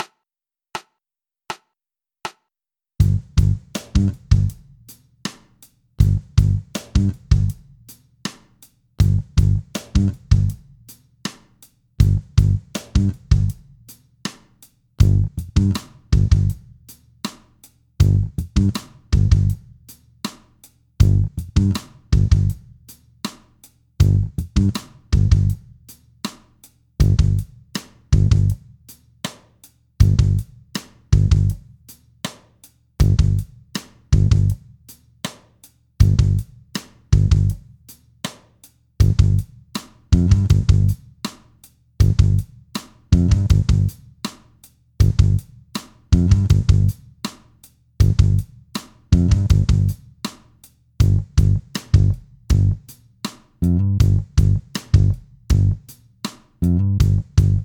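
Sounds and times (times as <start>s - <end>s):
bass at 80 BPM: 3.0s - 4.5s, 6.0s - 7.5s, 9.0s - 10.6s, 12.0s - 13.5s, 15.0s - 16.6s, 18.0s - 19.6s, 21.0s - 22.6s, 24.0s - 25.6s, 27.0s - 27.5s, 28.2s - 28.6s, 30.0s - 30.4s, 31.2s - 31.6s, 33.0s - 33.4s, 34.2s - 34.6s, 36.0s - 36.4s, 37.2s - 37.6s, 39.0s - 39.4s, 40.1s - 41.0s, 42.0s - 42.4s, 43.1s - 43.9s, 45.0s - 45.4s, 46.1s - 47.0s, 48.0s - 48.4s, 49.1s - 50.0s, 51.0s - 52.8s, 53.6s - 55.8s, 56.6s - 57.6s
drums at 80 BPM: 3.0s - 28.6s, 29.2s - 34.6s, 35.2s - 57.6s.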